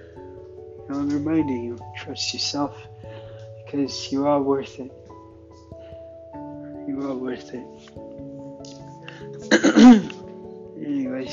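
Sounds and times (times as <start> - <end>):
speech: 0.9 - 3.0, 3.7 - 5.0, 6.9 - 8.1
loud throat clearing: 9.4 - 10.2
short gravelly cough: 9.4 - 10.2.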